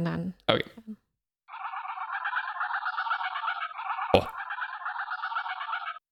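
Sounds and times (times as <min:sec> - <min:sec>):
speech: 0:00.0 - 0:00.8
geese honking: 0:01.5 - 0:06.0.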